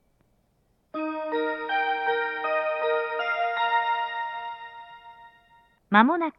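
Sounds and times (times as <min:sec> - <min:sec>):
station ambience in Numazu: 0:01.0 - 0:06.2.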